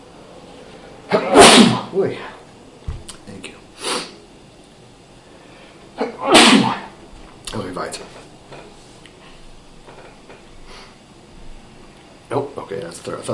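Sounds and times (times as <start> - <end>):
person sneezing: 1.1 - 2.0, 3.8 - 4.2, 6.0 - 6.9
speech: 2.0 - 2.4
breathing: 5.2 - 5.9.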